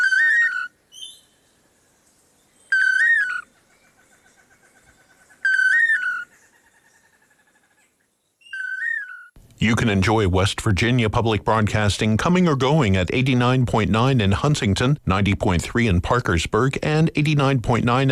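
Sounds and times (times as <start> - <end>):
bird singing a loud clear whistled song: 0.0 - 1.5, 2.4 - 7.1, 8.1 - 9.4
soft trailing bird trills: 0.0 - 9.4
speech: 9.6 - 18.0.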